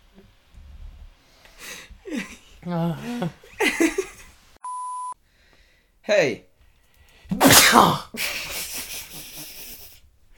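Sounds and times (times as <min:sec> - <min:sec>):
speech: 0:02.6 - 0:03.6, 0:06.1 - 0:06.5, 0:07.7 - 0:08.5
loud person sneezing: 0:07.3 - 0:08.4.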